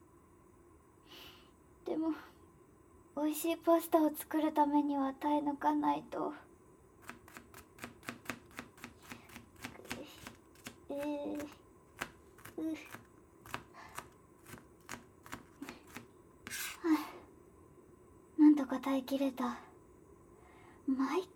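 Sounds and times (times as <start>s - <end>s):
speech: 1.9s - 2.4s, 3.2s - 6.4s, 12.6s - 13.0s, 18.9s - 19.7s, 21.0s - 21.3s
knife finely chopping an onion on a board: 7.0s - 16.8s
scraping and rustling: 8.8s - 16.9s.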